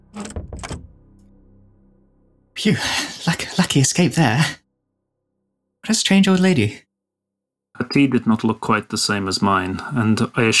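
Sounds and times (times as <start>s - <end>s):
door pushed shut with scraping swing and closing clunk: 0.0s - 1.3s
speech: 2.6s - 4.6s, 5.9s - 6.9s, 7.8s - 10.5s.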